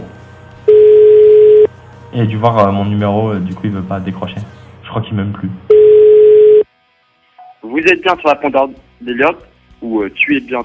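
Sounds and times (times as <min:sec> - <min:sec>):
steady mid-pitched electronic telephone ringback tone: 0:00.7 - 0:01.7, 0:05.7 - 0:06.6
speech: 0:02.1 - 0:05.6, 0:07.8 - 0:10.6.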